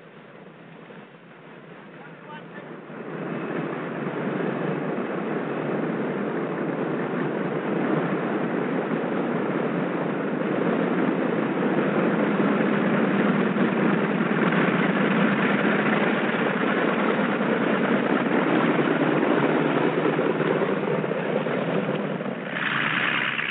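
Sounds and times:
airplane engine droning while taxiing to the warm-up block: 0.0 - 23.4.

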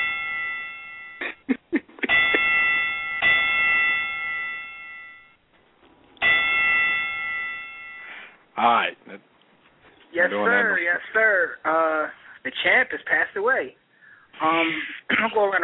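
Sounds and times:
bell struck for a five-bell salute: 0.0 - 1.5, 2.1 - 5.4, 6.2 - 8.4
speech: 8.6 - 9.4, 10.2 - 13.8, 14.4 - 15.6.

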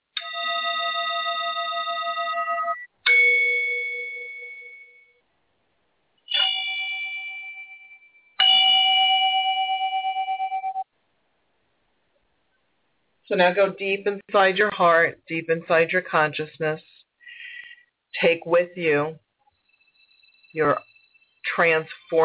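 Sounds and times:
Tibetan singing bowl struck and ringing: 0.2 - 5.2, 6.3 - 10.9
speech: 13.3 - 16.9, 18.2 - 19.2, 20.5 - 20.9, 21.6 - 22.2.

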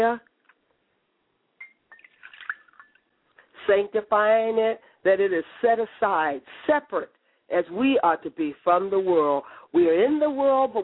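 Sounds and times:
speech: 0.0 - 0.3, 3.7 - 10.8
water poured onto the ground during a religious sanctification ritual: 1.9 - 3.0.

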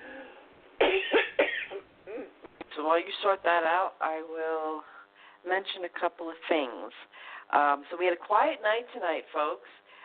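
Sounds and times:
harsh raspy coughs: 0.8 - 2.3
speech: 2.8 - 9.8.

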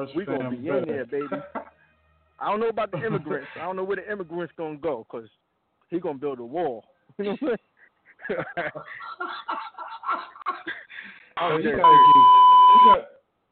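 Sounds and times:
speech: 0.0 - 1.7, 2.4 - 10.3, 11.4 - 13.1
people laughing: 1.2 - 1.8, 2.9 - 3.6, 7.9 - 11.1
loud steady censor bleep tone: 11.8 - 13.0.

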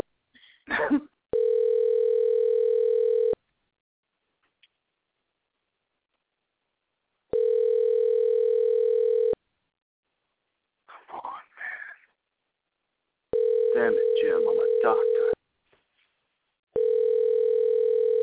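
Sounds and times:
speech: 0.7 - 1.1
telephone dial tone: 1.4 - 3.4, 7.3 - 9.4, 13.4 - 15.4, 16.8 - 18.2.

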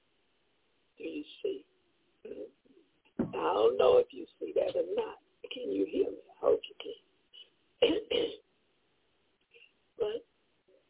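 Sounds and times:
speech: 1.0 - 1.7, 3.6 - 7.0
man clearing his throat during a religious address: 7.8 - 8.4.

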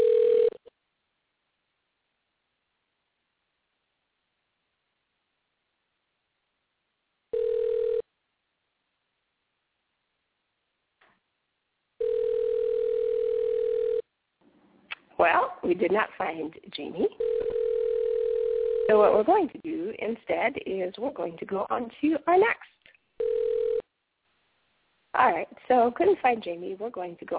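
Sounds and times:
electronic ringback tone of an unanswered outgoing phone call: 0.0 - 0.6, 7.3 - 8.0, 12.0 - 14.0, 17.2 - 19.0, 23.2 - 23.8
speech: 15.2 - 17.6, 18.9 - 22.7, 25.2 - 27.3.

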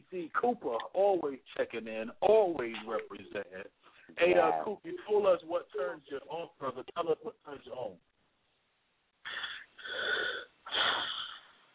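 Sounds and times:
speech: 0.1 - 8.1, 9.2 - 11.3
person taking deep breaths with a wheezy rasp: 9.2 - 11.6.

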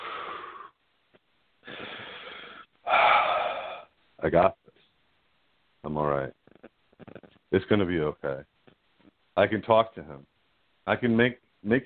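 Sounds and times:
heavy raspy labored breathing: 1.6 - 3.9
speech: 4.2 - 4.6, 5.8 - 6.4, 7.5 - 8.5, 9.4 - 10.3, 10.9 - 11.8.

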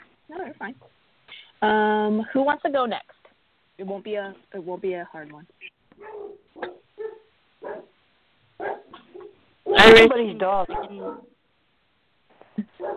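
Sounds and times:
speech: 0.3 - 3.2, 3.8 - 6.7, 9.7 - 11.3
dog yipping: 6.0 - 8.0, 8.6 - 10.0, 10.7 - 11.3, 12.8 - 12.9.

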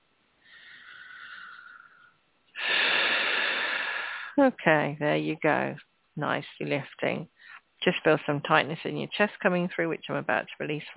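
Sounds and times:
deep breathing through the nose: 0.4 - 4.4
speech: 4.4 - 10.9.

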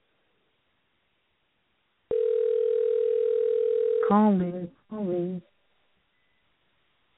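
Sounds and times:
telephone dial tone while calling back a dropped caller: 2.1 - 4.0
speech: 4.1 - 5.5.

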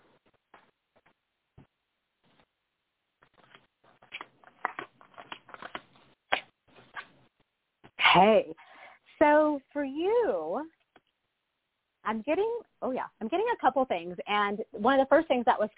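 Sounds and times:
tarot cards shuffling: 3.2 - 7.2
speech: 8.2 - 8.6, 9.8 - 10.7, 12.1 - 15.7.

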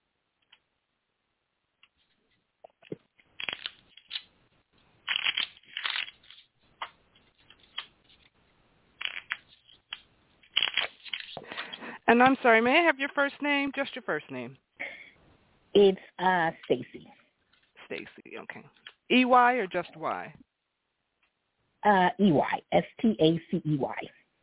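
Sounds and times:
deck of cards being shuffled and riffled: 1.8 - 4.3, 5.1 - 8.3, 9.0 - 11.8
speech: 12.1 - 14.6, 15.8 - 17.2, 17.9 - 20.4, 21.8 - 24.2.

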